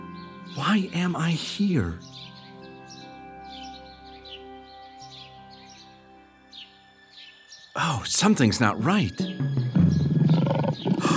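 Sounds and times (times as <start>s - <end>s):
speech: 0.5s - 2.3s, 7.8s - 10.0s
lion roaring: 9.4s - 11.1s.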